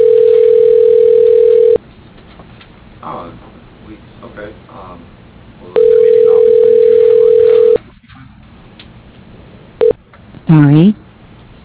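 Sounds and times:
electronic phone ring tone during call transfer: 0.0s - 1.8s, 5.8s - 7.8s.

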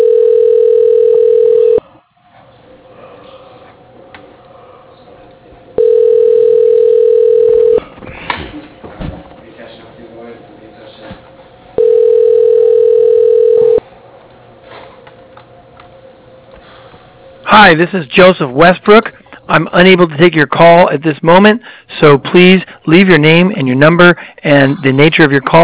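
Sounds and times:
telephone line beeps during a call transfer to voicemail: 0.0s - 1.8s, 5.8s - 7.8s, 11.8s - 13.8s
speech: 17.6s - 25.6s.

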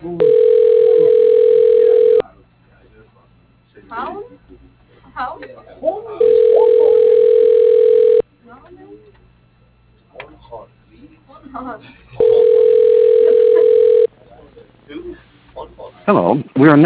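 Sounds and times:
telephone ringback tones on the caller's end: 0.2s - 2.2s, 6.2s - 8.2s, 12.2s - 14.1s
speech: 16.1s - 16.8s.

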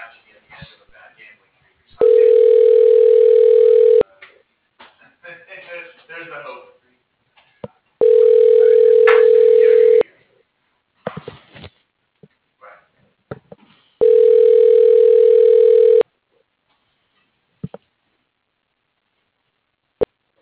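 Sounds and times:
office telephone ringback tones during transfer to voicemail: 2.0s - 4.0s, 8.0s - 10.0s, 14.0s - 16.0s.

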